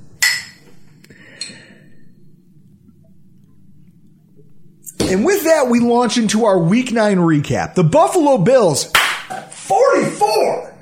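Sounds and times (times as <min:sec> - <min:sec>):
low hum: 0:00.0 - 0:10.8
glasses clinking in a toast: 0:00.2 - 0:00.8
speech: 0:05.1 - 0:09.0, 0:09.7 - 0:10.7.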